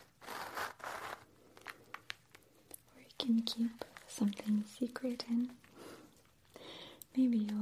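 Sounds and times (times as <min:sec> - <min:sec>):
small zipper on the back of a purse pulled open: 0:00.0 - 0:01.8
speech: 0:03.2 - 0:05.6, 0:07.2 - 0:07.5.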